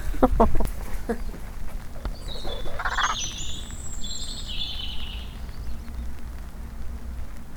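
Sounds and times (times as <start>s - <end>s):
steady outdoor hiss: 0.0s - 7.5s
robin singing warbling chirps: 2.0s - 6.0s.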